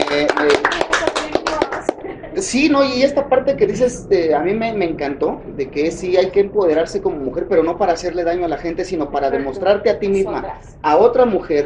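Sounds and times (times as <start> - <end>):
hands clapping in applause: 0.0 - 2.0
voices murmuring: 0.0 - 11.6
speech: 2.4 - 11.6.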